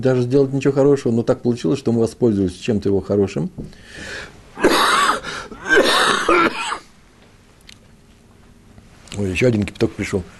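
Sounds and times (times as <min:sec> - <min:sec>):
speech: 0:00.0 - 0:04.9, 0:09.2 - 0:10.3
person breathing: 0:03.7 - 0:04.4, 0:05.2 - 0:05.6
person clearing their throat: 0:04.6 - 0:06.9
person coughing: 0:04.6 - 0:06.9.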